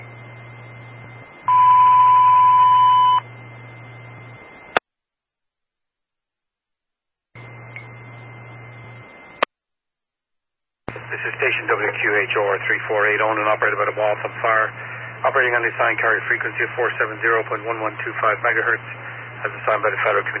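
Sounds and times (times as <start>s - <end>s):
constant hum: 0.0s - 4.8s, 7.4s - 9.5s, 10.9s - 20.3s
fire department box alarm test tone: 1.5s - 3.2s
speech: 11.2s - 20.3s.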